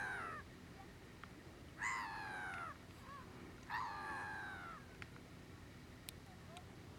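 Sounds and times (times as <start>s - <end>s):
agitated seagull calling: 0.0s - 0.5s, 1.8s - 5.0s.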